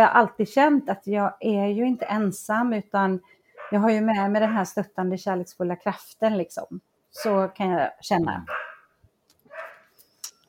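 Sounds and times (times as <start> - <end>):
speech: 0.0 - 8.7
dogs barking: 3.6 - 4.7, 8.4 - 8.9, 9.5 - 9.9.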